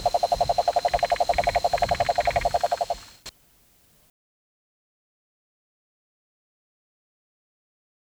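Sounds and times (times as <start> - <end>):
Cane toad Rhinella marina trilling: 0.0 - 3.4.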